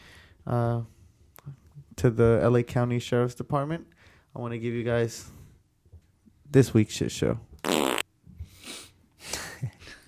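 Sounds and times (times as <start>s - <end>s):
speech: 0.4s - 5.4s, 6.5s - 7.5s
fart sound effect: 7.6s - 8.0s.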